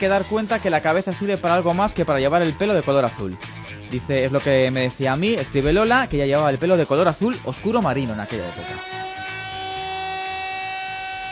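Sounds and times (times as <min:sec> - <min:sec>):
speech: 0:00.0 - 0:09.1
siren sound effect: 0:08.1 - 0:11.3.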